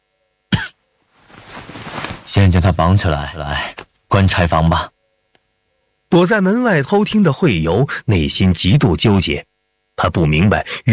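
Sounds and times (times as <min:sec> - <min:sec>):
person coughing: 0:00.5 - 0:00.8
speech: 0:02.3 - 0:04.9, 0:06.1 - 0:10.9.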